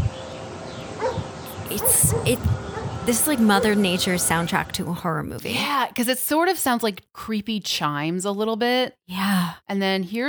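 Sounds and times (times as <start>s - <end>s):
dog barking: 1.0s - 4.1s
speech: 1.7s - 10.2s.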